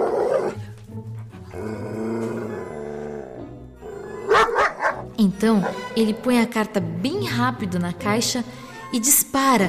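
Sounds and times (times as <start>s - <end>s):
dog growling low: 1.4s - 5.0s
dog barking sharply: 4.2s - 5.9s
speech: 5.2s - 9.6s.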